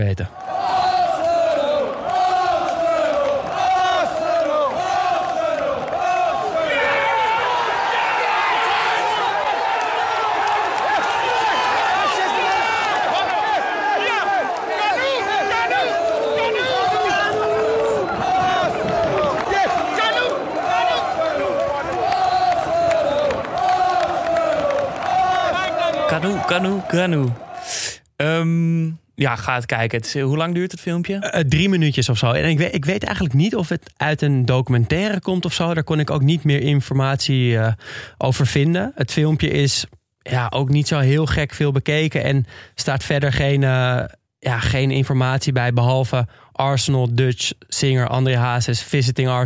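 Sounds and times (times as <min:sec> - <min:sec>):
speech: 0:00.0 - 0:00.4, 0:26.2 - 0:27.4, 0:28.2 - 0:49.4
huge stadium crowd roaring after a goal: 0:00.3 - 0:27.7.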